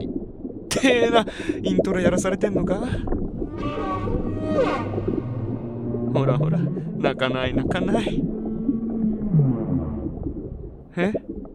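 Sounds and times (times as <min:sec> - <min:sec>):
dense low rumbling background: 0:00.0 - 0:11.5
speech: 0:00.8 - 0:03.8, 0:04.5 - 0:05.3, 0:06.2 - 0:08.3, 0:11.0 - 0:11.3
whale calling in mournful wavering moans: 0:03.4 - 0:10.4.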